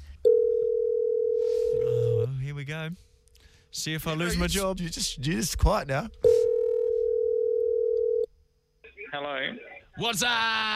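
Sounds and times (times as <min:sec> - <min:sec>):
steady telephone tone: 0:00.3 - 0:02.2, 0:06.3 - 0:08.3
speech: 0:02.8 - 0:03.1, 0:03.8 - 0:06.4, 0:09.2 - 0:10.7.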